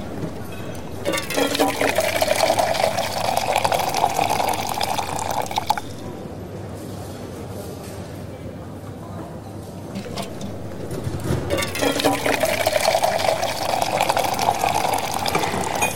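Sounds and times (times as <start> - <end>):
coffee poured from a coffee pot into cups: 0.0 - 6.2, 10.0 - 15.9.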